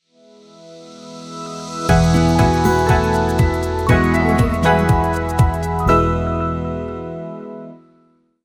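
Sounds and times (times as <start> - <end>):
elegant pop logo jingle: 0.9 - 7.6.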